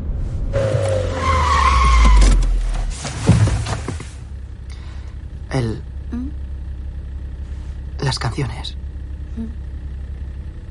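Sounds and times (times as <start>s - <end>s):
deep car engine rumble: 0.0s - 10.6s
car tires squealing as car skids to a stop: 0.5s - 3.9s
speech: 8.1s - 9.6s.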